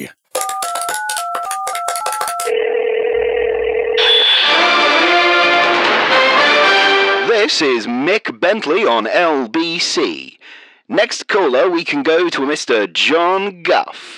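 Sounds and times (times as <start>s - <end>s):
bright music: 0.3s - 2.5s, 4.0s - 7.3s
touch-tone keypad beeps of a phone dialing a radio station: 0.4s - 2.5s
steady humming telephone line tone: 1.0s - 5.0s
speech: 7.4s - 14.1s.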